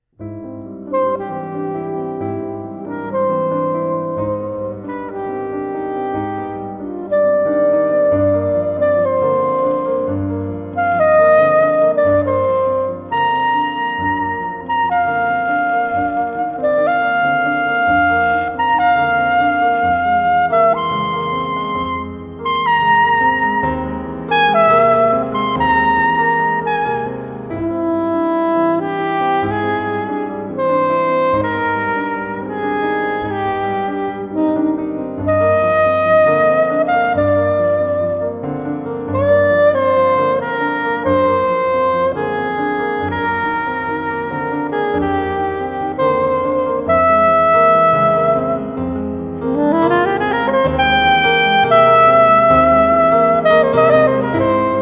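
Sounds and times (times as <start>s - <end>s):
piano: 0.0s - 54.8s
soprano saxophone: 0.2s - 54.8s.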